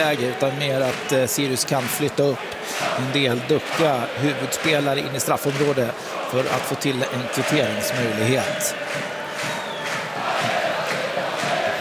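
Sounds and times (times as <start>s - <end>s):
speech: 0.0s - 9.5s
large football stadium crowd roar: 0.0s - 11.7s.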